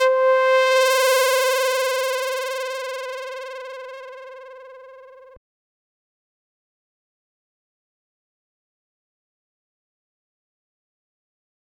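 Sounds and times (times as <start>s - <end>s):
synth roll: 0.0s - 5.4s.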